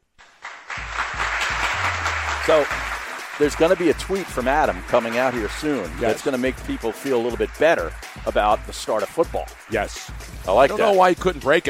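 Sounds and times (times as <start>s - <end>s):
roaring round of applause: 0.2s - 11.6s
speech: 2.5s - 11.6s.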